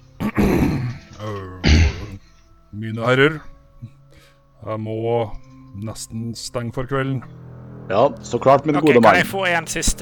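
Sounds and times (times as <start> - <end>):
man clearing his throat: 0.2 - 1.0, 1.6 - 2.2
speech: 2.8 - 4.0, 4.6 - 10.0.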